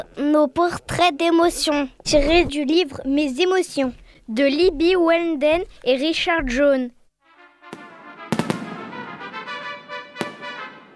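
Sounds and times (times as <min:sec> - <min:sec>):
speech: 0:00.0 - 0:07.0
fireworks bursting with sharp cracking bangs: 0:07.6 - 0:10.9.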